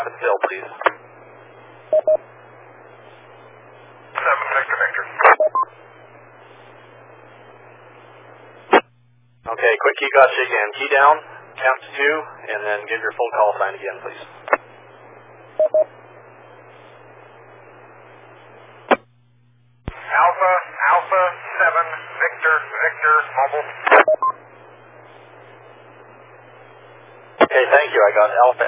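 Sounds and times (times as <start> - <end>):
speech: 0.0 - 1.0, 1.9 - 2.3, 9.5 - 14.4, 15.6 - 16.0, 20.1 - 24.4, 27.5 - 28.6
thin voice over a noisy radio channel: 0.0 - 1.0, 4.1 - 5.4, 9.5 - 14.6, 19.9 - 24.0, 27.4 - 28.6
radio static over a weak transmission: 0.0 - 19.1, 19.8 - 28.6.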